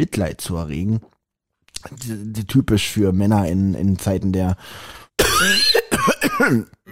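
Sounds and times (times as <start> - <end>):
speech: 0.0 - 1.1, 1.8 - 5.8, 6.4 - 6.9
man with a cold or flu clearing throat: 5.2 - 6.9
man with a cold or flu coughing: 5.2 - 6.9.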